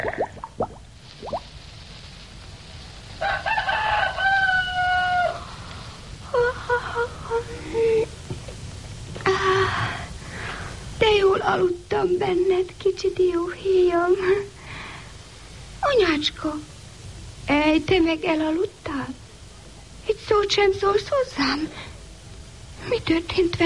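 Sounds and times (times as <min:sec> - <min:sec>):
quiet outdoor noise: 0:00.0 - 0:23.6
rooster crowing: 0:03.2 - 0:05.5
speech: 0:11.6 - 0:14.5, 0:16.2 - 0:16.7, 0:17.8 - 0:18.7, 0:20.3 - 0:21.8, 0:23.0 - 0:23.6.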